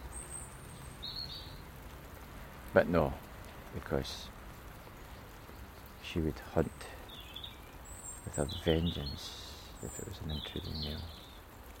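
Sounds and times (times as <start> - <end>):
blackbird chirping in a garden: 0.0 - 1.7, 4.8 - 11.7
steady low hiss: 0.0 - 11.7
speech: 2.8 - 4.4, 6.1 - 7.0, 8.3 - 11.2.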